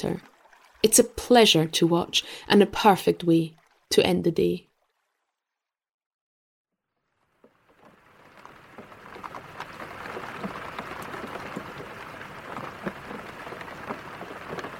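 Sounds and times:
speech: 0.0 - 4.7
steady rain pattering on a hard surface: 7.1 - 14.7.

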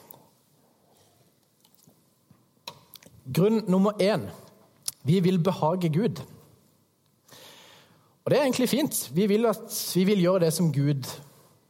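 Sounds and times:
person taking a quiet sip of water with wet mouth and swallowing sounds: 1.2 - 2.0
speech: 3.3 - 4.4, 5.0 - 6.4, 8.3 - 11.3.

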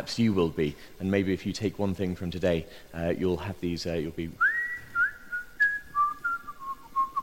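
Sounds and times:
speech: 0.0 - 4.5
person whistling a short melody: 4.4 - 7.2.

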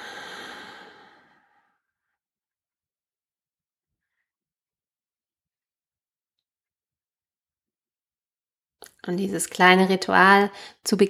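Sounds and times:
person breathing out during a morning breathing exercise: 0.0 - 1.8
speech: 9.0 - 11.0.

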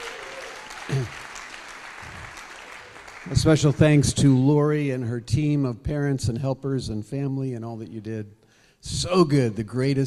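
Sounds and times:
crowd applauding: 0.0 - 4.6
speech: 0.9 - 1.3, 3.3 - 10.0.

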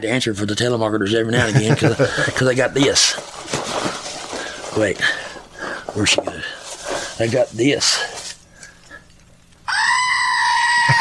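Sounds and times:
speech: 0.0 - 3.4, 4.8 - 5.2, 6.0 - 6.6, 7.2 - 8.2
laughter: 1.3 - 2.9
screaming goat novelty toy: 9.7 - 11.0.

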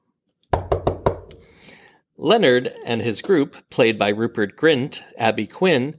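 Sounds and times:
knocking on a wooden cabin door: 0.5 - 1.3
speech: 2.2 - 5.9.

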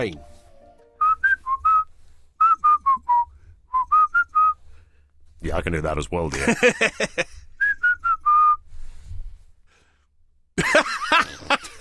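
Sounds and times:
speech: 0.0 - 0.3, 5.4 - 7.4
person whistling a short tune: 1.0 - 4.6, 7.6 - 8.6
laughter: 6.3 - 7.4, 10.6 - 11.7.

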